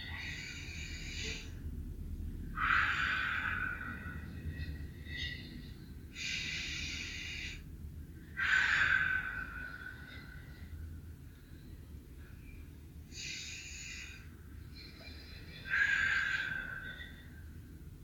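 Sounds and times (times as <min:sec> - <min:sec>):
slow deep diaphragmatic breathing, inhaling and exhaling: 0:00.0 - 0:18.0.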